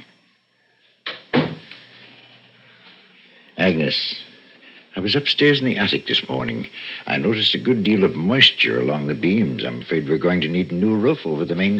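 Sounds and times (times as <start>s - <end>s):
door swinging shut with a heavier thud: 1.1s - 1.7s
speech: 3.6s - 4.3s, 5.0s - 11.7s.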